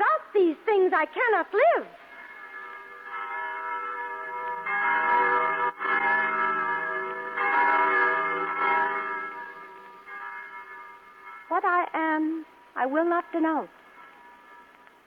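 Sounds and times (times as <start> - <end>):
speech: 0.9 - 2.0, 11.6 - 13.8
church bells ringing: 1.1 - 15.0.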